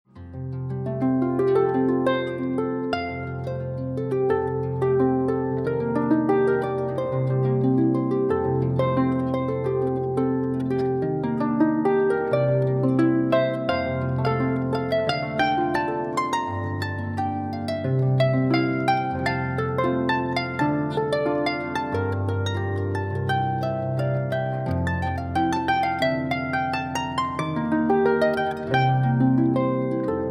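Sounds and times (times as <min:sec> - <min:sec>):
harp music: 0:00.1 - 0:30.2.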